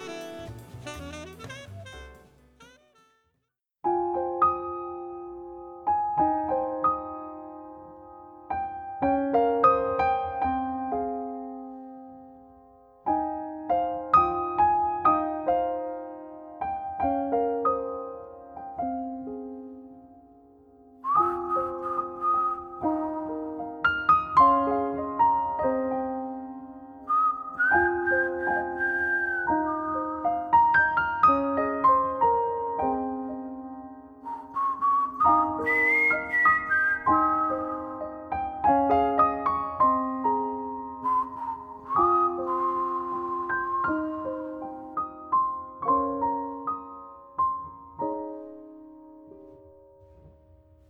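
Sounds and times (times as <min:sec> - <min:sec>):
singer singing a slow jazz ballad: 0:00.0 - 0:03.3
piano playing a slow jazz ballad: 0:00.0 - 0:50.8.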